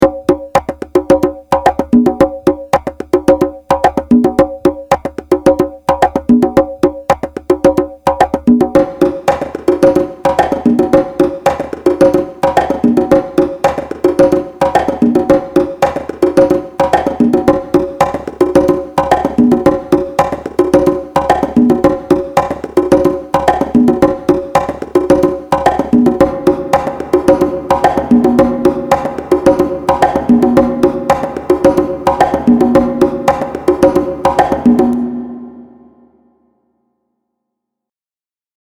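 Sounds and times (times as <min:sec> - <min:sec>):
congas: 0:00.0 - 0:36.4.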